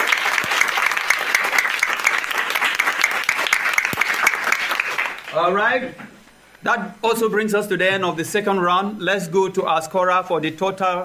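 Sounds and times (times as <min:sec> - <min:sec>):
sizable crowd applauding: 0:00.0 - 0:05.4
speech: 0:05.4 - 0:11.0.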